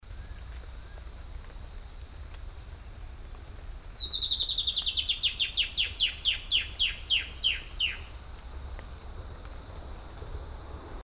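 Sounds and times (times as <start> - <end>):
White-bellied Antbird calling in Panama: 3.8 - 8.4.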